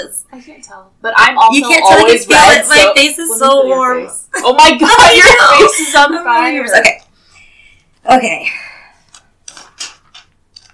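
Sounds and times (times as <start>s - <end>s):
speech: 0.0s - 7.0s, 8.0s - 8.7s
paper rustling: 9.1s - 10.7s.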